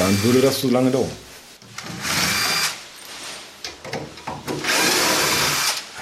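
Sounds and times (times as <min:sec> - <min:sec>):
speech: 0:00.1 - 0:02.0
cordless screwdriver driving screws out of a shelf: 0:02.0 - 0:02.8, 0:04.6 - 0:05.8.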